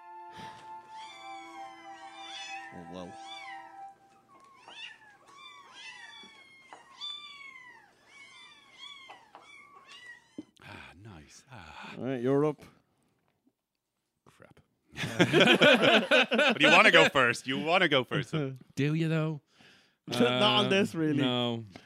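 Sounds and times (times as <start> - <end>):
many kittens meowing in high-pitched cries: 0.8 - 10.6
speech: 2.7 - 3.3, 12.0 - 12.7, 15.2 - 19.4, 20.1 - 21.8
laughter: 15.0 - 18.4, 20.1 - 21.1.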